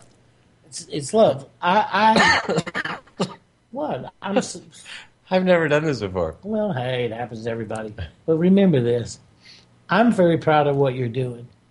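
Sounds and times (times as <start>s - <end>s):
speech: 0.7s - 9.3s, 9.9s - 11.6s
person clearing throat with throaty vocal rumbles: 2.1s - 3.4s
person coughing: 2.1s - 3.4s.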